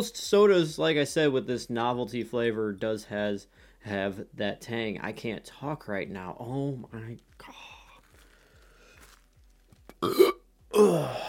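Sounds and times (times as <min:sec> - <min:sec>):
speech: 0:00.0 - 0:07.7, 0:10.0 - 0:11.2
long low croaky burp: 0:09.9 - 0:11.2.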